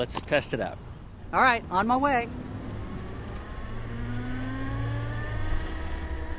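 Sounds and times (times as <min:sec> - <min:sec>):
speech: 0:00.0 - 0:02.5
low rumble of road and wind noise: 0:00.0 - 0:06.3
Zero electric motorcycle whine accelerating through downtown Washington, D.C. streets: 0:02.3 - 0:06.3.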